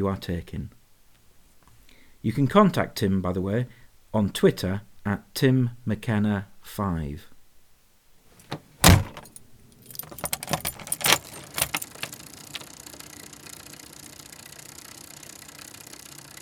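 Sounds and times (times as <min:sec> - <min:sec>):
speech: 0:00.0 - 0:00.8, 0:02.2 - 0:07.3
front door slamming: 0:08.5 - 0:12.2
bicycle clicking and rattling as it is wheeled off: 0:09.2 - 0:16.3
bicycle rolling away with a steady low hiss: 0:12.4 - 0:16.3.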